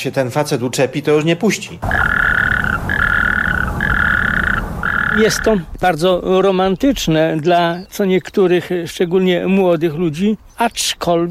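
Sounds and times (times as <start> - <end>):
speech: 0.0 - 2.2, 5.2 - 11.3
frogs croaking in a trilling chorus: 1.8 - 7.1
low rumble: 1.8 - 8.0.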